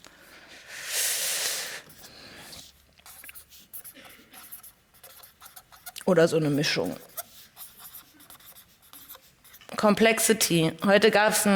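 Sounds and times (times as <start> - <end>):
pen scratching on a surface while writing by hand: 1.9 - 10.2
speech: 6.1 - 7.1, 9.8 - 11.5.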